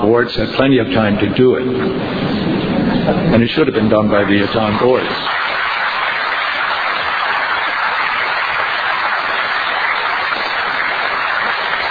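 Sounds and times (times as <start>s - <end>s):
speech: 0.0s - 2.4s, 3.1s - 5.4s
audience applause at a town meeting: 3.8s - 11.8s.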